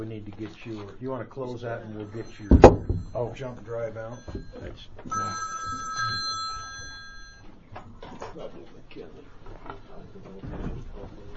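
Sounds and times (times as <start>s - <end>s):
speech: 0.0s - 6.3s, 8.4s - 11.3s
phone ringing with an electronic trill: 1.8s - 7.7s.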